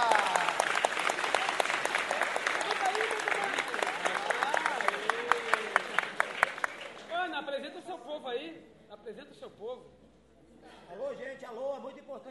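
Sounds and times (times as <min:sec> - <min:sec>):
audience applauding: 0:00.0 - 0:07.3.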